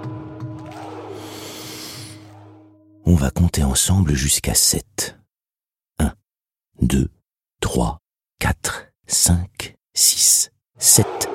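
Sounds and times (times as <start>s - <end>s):
long deep breath drawn in: 1.1s - 2.4s
speech: 3.1s - 5.2s, 6.8s - 11.3s.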